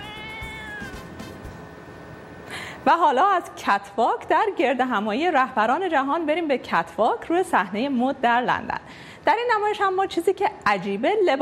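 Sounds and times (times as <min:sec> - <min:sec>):
street cat in Istanbul meowing: 0:00.0 - 0:01.1
low noise: 0:00.0 - 0:11.4
speech: 0:02.8 - 0:11.4.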